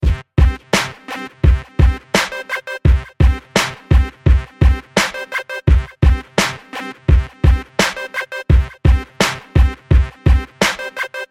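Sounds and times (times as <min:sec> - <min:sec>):
hip hop beat: 0:00.0 - 0:11.2.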